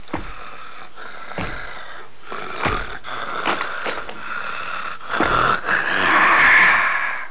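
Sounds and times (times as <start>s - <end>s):
monster footsteps: 0.0s - 4.4s, 5.0s - 5.8s
monster grunting: 1.0s - 7.2s.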